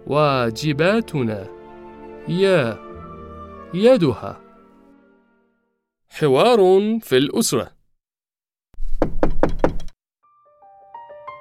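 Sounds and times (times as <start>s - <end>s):
speech: 0.1s - 1.6s, 2.3s - 2.8s, 3.7s - 4.4s, 6.1s - 7.8s
firm knocking on a door: 8.8s - 10.0s.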